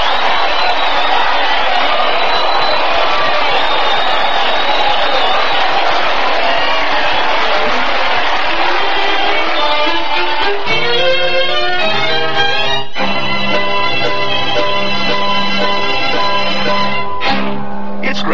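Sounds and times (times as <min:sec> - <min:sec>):
whoops from a crowd: 0:00.0 - 0:10.3
large crowd cheering: 0:00.0 - 0:18.3.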